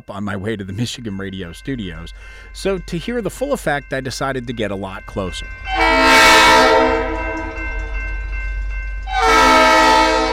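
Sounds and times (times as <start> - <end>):
speech: 0.0 - 7.0
low rumble of rail traffic: 0.4 - 10.3
train horn sounding while approaching a street-grade crossing without gates: 5.7 - 8.0, 9.1 - 10.3.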